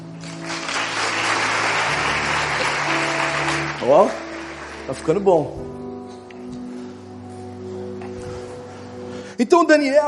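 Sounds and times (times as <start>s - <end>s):
audience applause: 0.2s - 5.3s
speech: 3.9s - 4.2s, 4.9s - 5.8s, 9.4s - 10.0s.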